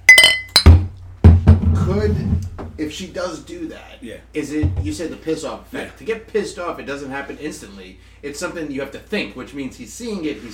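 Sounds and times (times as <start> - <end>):
glasses clinking in a toast: 0.0 - 0.8
speech: 2.0 - 10.5.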